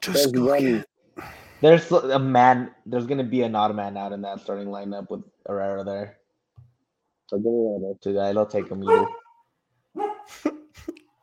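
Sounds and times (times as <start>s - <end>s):
speech: 0.0s - 6.2s, 7.3s - 9.2s, 10.0s - 11.0s
dog giving yappy whiny barks: 8.6s - 9.4s, 10.0s - 10.3s.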